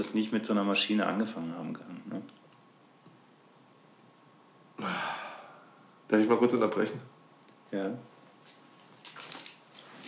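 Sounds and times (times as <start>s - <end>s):
speech: 0.0s - 2.4s, 6.1s - 8.6s
keys jangling on a keyring: 8.4s - 10.0s.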